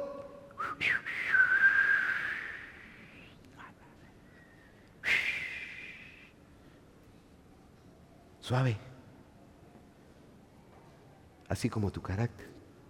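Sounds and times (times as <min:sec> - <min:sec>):
soft breathy human whistle: 0:00.6 - 0:08.1
speech: 0:08.5 - 0:08.9, 0:11.5 - 0:12.6.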